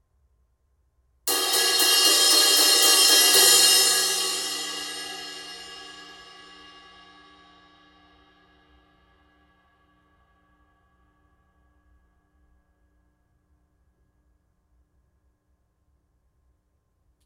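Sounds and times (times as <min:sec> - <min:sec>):
16in heavy crash cymbal: 0:01.3 - 0:08.7.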